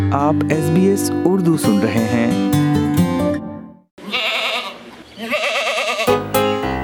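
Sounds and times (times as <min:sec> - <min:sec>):
speech: 0:00.1 - 0:02.7
goat bleating: 0:04.0 - 0:06.7.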